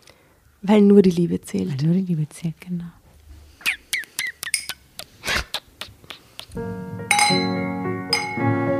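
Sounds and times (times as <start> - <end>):
speech: 0.6 - 3.0, 6.6 - 6.8
glasses clinking in a toast: 7.1 - 8.4.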